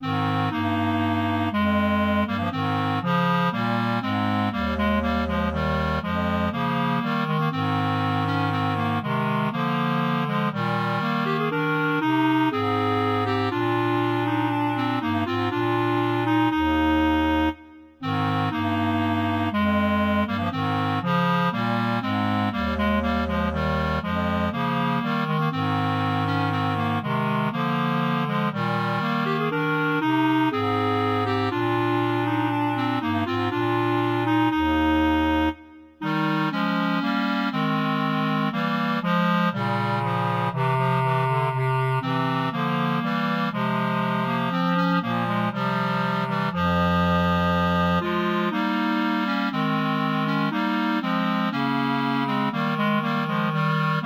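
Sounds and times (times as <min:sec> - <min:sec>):
bass clarinet trio playing a sarabande: 0:00.0 - 0:54.0.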